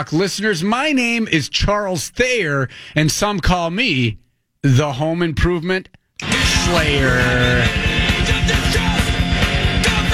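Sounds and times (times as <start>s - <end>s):
speech: 0.0s - 6.0s, 6.7s - 7.8s
death metal music with screaming vocals: 6.2s - 10.1s
distorted guitars: 6.2s - 10.1s
harsh screamed vocals: 6.2s - 10.1s
rapid pounding double-bass drums: 6.3s - 10.1s.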